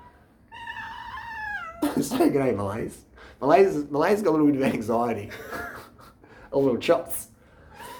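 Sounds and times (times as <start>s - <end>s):
cat meowing: 0.0s - 2.0s
speech: 1.9s - 5.7s, 6.5s - 7.3s.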